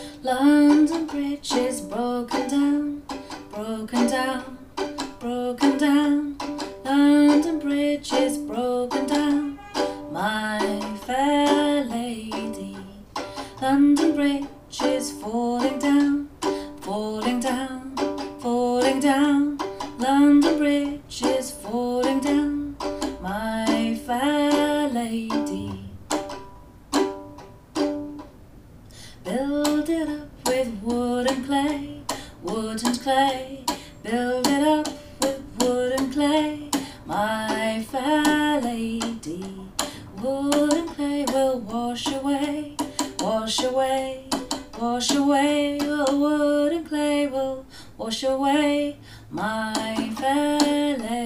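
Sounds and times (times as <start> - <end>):
person singing a nursery rhyme: 0.2 - 26.1, 29.2 - 51.2
fiddle accompaniment: 8.4 - 11.0.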